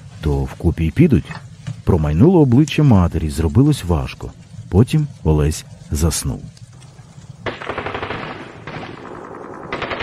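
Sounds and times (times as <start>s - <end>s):
speech: 0.2s - 6.6s
machine gun fire in rattling bursts: 7.4s - 10.0s.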